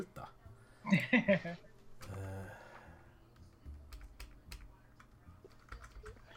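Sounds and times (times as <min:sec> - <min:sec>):
speech: 0:00.0 - 0:01.7
laughter: 0:00.9 - 0:01.7
typing on a computer keyboard: 0:03.4 - 0:06.3.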